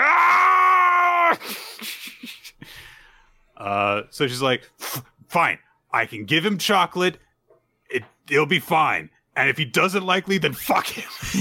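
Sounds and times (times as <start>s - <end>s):
voice imitating a scream of a flustered teenage girl: 0.0s - 1.4s
speech: 1.3s - 2.0s, 3.6s - 7.3s, 7.9s - 11.3s
soft breaths: 1.5s - 3.6s.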